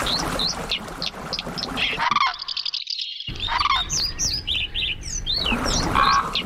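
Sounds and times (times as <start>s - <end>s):
several different bird calls and songs: 0.0s - 6.4s.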